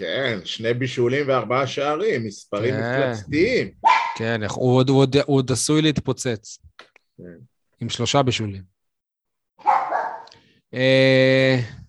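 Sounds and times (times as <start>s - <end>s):
speech: 0.0s - 8.8s, 10.7s - 11.8s
dog barking: 3.8s - 4.2s, 9.6s - 10.3s.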